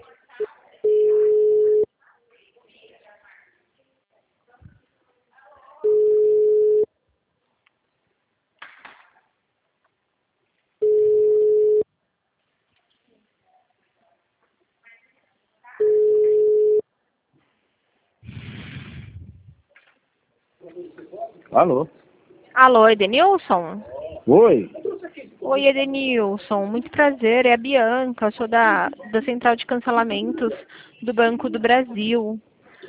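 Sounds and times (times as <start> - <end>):
ringback tones of an outgoing phone call: 0.8 - 1.9, 5.8 - 6.9, 10.8 - 11.8, 15.8 - 16.8
speech: 21.6 - 22.0, 22.6 - 24.8, 25.5 - 32.5.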